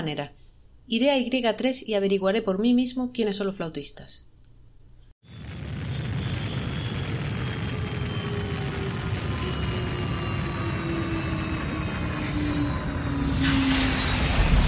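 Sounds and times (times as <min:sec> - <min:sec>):
speech: 0:00.0 - 0:04.3
small patrol spaceship engines roaring while landing: 0:05.4 - 0:14.6.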